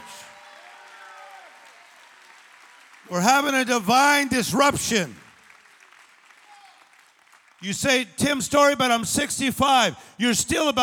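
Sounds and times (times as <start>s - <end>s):
large group clapping steadily together: 0.0s - 8.4s
speech: 3.0s - 5.2s, 7.6s - 10.8s.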